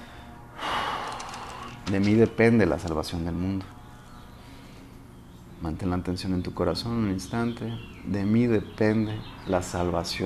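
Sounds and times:
deep inhalation during a guided meditation: 0.0 - 1.8
speech: 1.9 - 3.8, 5.6 - 10.2.

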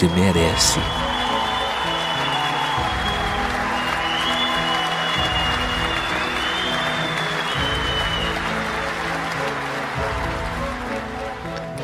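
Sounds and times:
speech: 0.0 - 1.1
whistles: 0.0 - 8.9
dense applause from a large crowd: 0.0 - 11.8.

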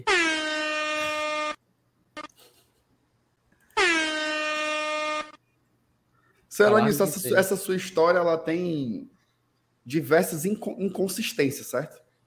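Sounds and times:
air horn blasts with a rich buzzing harmonic tone: 0.0 - 1.6, 3.8 - 5.4
speech: 6.6 - 9.2, 9.8 - 12.0.

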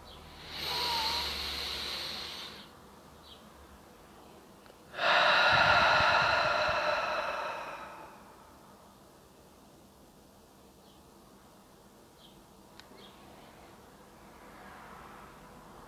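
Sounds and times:
person taking a full breath in and out during a meditation: 0.2 - 2.8, 4.9 - 8.7.

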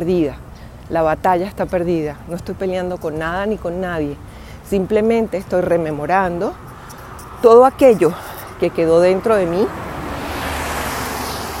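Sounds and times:
speech: 0.0 - 6.7, 7.4 - 9.8
cars passing by on street: 0.0 - 11.5.

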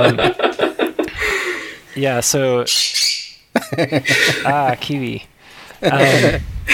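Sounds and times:
speech: 0.0 - 0.7, 2.0 - 6.5
laughter: 0.0 - 1.4, 3.6 - 4.8, 5.8 - 6.7
pet bird squawking: 2.7 - 3.4.

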